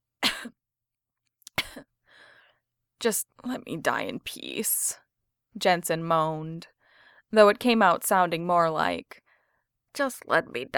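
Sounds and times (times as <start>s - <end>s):
weak cough from man lying ill: 0.2s - 0.5s, 1.6s - 1.9s
speech: 3.0s - 6.7s, 7.3s - 9.2s, 10.0s - 10.7s.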